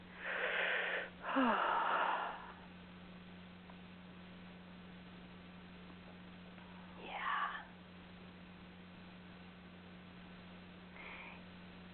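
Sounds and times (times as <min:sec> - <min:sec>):
deep breath drawn during a relaxation exercise for stress release: 0:00.2 - 0:02.6
speech: 0:01.4 - 0:01.7.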